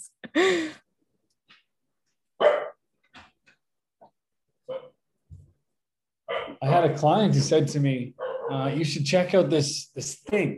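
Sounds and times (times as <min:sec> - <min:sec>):
speech: 0:00.3 - 0:00.8, 0:06.8 - 0:10.5
dog barking: 0:02.4 - 0:02.8, 0:04.7 - 0:05.0, 0:06.3 - 0:06.6, 0:08.2 - 0:08.6.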